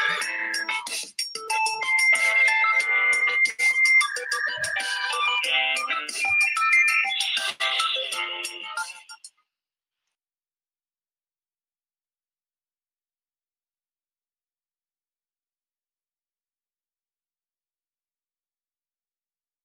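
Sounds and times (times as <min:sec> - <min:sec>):
tinny electronic melody through a small phone speaker: 0:00.0 - 0:09.3.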